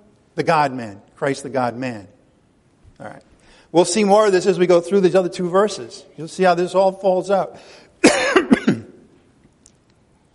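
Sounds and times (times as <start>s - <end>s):
speech: 0.4s - 2.2s, 3.0s - 8.2s
harsh coughing: 8.0s - 9.1s.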